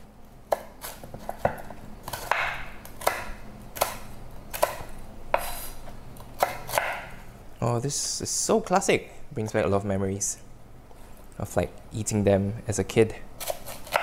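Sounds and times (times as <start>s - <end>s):
knife chopping biscuits into rough chunks: 0.5s - 5.6s, 6.3s - 7.2s, 13.4s - 14.0s
speech: 7.7s - 10.4s, 11.4s - 13.3s.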